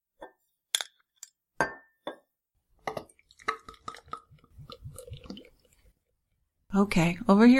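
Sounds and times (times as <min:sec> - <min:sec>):
glass clinking: 0:01.6 - 0:02.3
bubbly beer glugging into a glass: 0:02.9 - 0:06.0
speech: 0:06.8 - 0:07.5.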